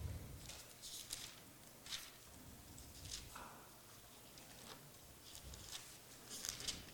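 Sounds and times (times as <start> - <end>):
paper pages of a book being turned: 0.4 - 2.2, 2.8 - 3.5, 4.2 - 6.9.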